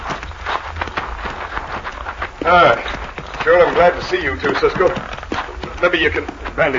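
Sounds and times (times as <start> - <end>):
hooves of several horses clip-clopping as they're led on foot: 0.0 - 6.7
speech: 2.5 - 5.1, 5.8 - 6.7.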